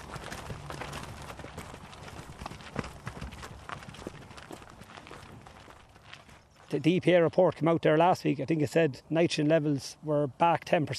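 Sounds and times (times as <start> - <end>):
herd of cows' hooves clopping on hard ground: 0.0 - 8.8
speech: 6.7 - 10.9.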